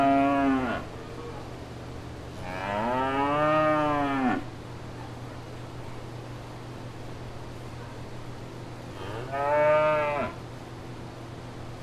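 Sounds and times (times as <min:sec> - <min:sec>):
cow mooing at fair grounds: 0:00.0 - 0:00.9, 0:02.4 - 0:04.5, 0:09.0 - 0:10.4.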